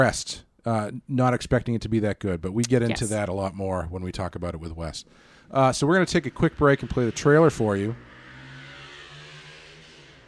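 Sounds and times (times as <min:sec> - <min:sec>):
speech: 0:00.0 - 0:08.1
motorcycle engine passing by: 0:05.9 - 0:10.2.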